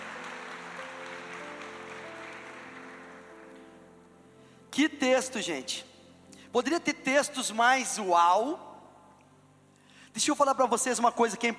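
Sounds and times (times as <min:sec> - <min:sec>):
church audience applauding: 0:00.0 - 0:03.8
speech: 0:04.8 - 0:05.9, 0:06.5 - 0:08.7, 0:10.2 - 0:11.5.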